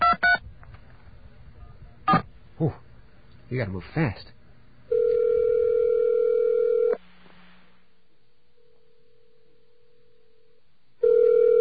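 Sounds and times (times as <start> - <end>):
speech: 2.6 - 2.8, 3.5 - 4.4
telephone dial tone: 4.9 - 7.0, 11.0 - 11.5.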